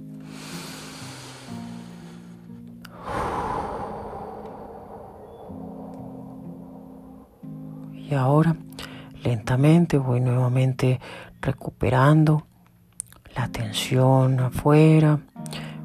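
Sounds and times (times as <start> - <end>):
deep strong breath during a guided relaxation exercise: 0.2 - 8.0, 8.8 - 9.2, 15.5 - 15.8
steady low tone: 2.0 - 15.4
speech: 8.1 - 12.5, 13.4 - 15.3.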